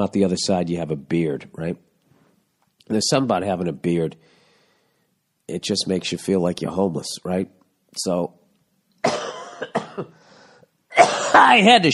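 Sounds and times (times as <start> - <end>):
speech: 0.0 - 1.9, 2.9 - 4.4, 5.5 - 8.4, 9.0 - 10.2, 11.0 - 11.9
sick man coughing harshly: 9.0 - 10.3, 10.9 - 11.7.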